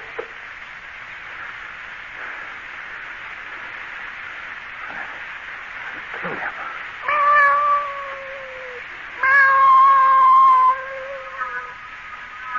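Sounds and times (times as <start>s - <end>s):
cat yowling and meowing: 7.0s - 11.8s.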